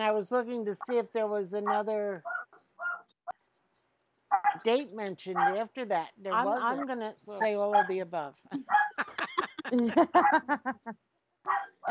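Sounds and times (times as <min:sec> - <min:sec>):
speech: 0:00.0 - 0:02.3, 0:04.6 - 0:09.0, 0:09.7 - 0:11.8
dog barking in high-pitched yappy barks: 0:01.7 - 0:03.1, 0:04.3 - 0:04.6, 0:05.4 - 0:05.6, 0:08.7 - 0:09.0, 0:11.5 - 0:11.8
laughter: 0:08.5 - 0:11.0.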